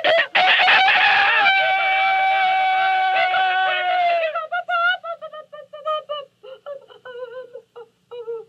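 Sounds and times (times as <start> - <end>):
rooster crowing: 0.0 - 4.4
hen clucking and cackling: 0.0 - 4.5.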